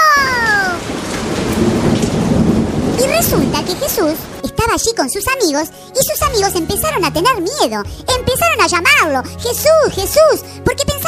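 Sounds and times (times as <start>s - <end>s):
steady dense rain in a thunderstorm: 0.0s - 5.9s
deep rumble of thunder: 0.0s - 7.0s
speech: 3.2s - 11.0s.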